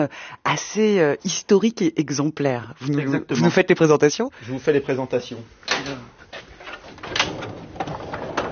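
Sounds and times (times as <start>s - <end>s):
speech: 0.0s - 6.1s
specimen cabinet drawer scraping open: 5.7s - 8.5s.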